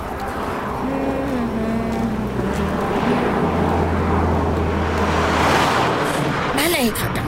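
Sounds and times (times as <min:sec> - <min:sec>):
deep low hum: 0:00.0 - 0:06.6
station wagon engine roaring while speeding past: 0:00.0 - 0:07.2.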